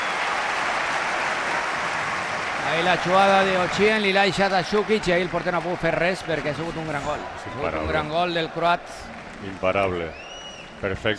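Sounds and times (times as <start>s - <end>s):
football stadium crowd applauding the home team: 0.0s - 11.1s
speech: 2.7s - 11.1s.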